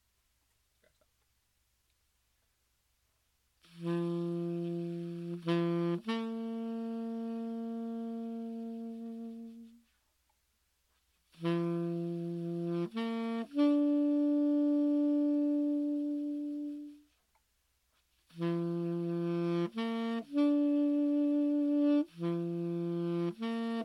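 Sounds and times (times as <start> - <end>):
saxophone playing a bugle call: 3.6 - 9.9, 11.3 - 17.2, 18.3 - 23.8.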